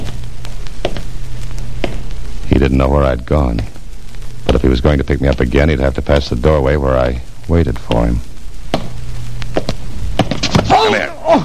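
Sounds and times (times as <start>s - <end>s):
hard footsteps: 0.0s - 2.6s, 3.2s - 6.1s, 7.7s - 10.9s
steady low rumble: 0.0s - 10.2s
speech: 2.7s - 3.8s, 4.4s - 8.3s.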